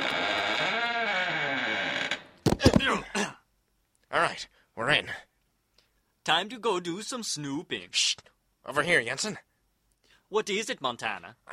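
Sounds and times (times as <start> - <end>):
heavy door creaking open: 0.0 - 2.8
loud wooden clunks and bumps: 2.4 - 3.0
speech: 4.3 - 5.3, 6.3 - 9.5, 10.3 - 11.5.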